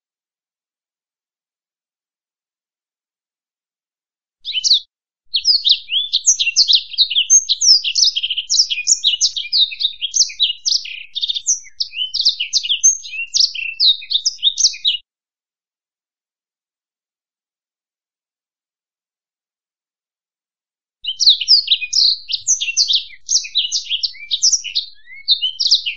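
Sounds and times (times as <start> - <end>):
black-throated canary twittering and warbling song: 4.4 - 15.0, 21.0 - 25.9.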